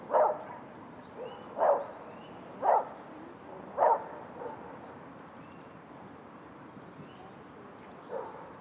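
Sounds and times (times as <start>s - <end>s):
dog barking: 0.1s - 0.6s, 1.2s - 1.9s, 2.6s - 3.0s, 3.8s - 4.7s, 8.1s - 8.5s.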